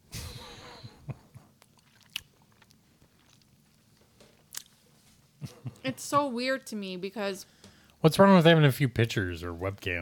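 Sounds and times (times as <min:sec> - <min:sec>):
chewing with wet smacks and crunchy bites: 0:01.6 - 0:04.8
speech: 0:05.8 - 0:10.0.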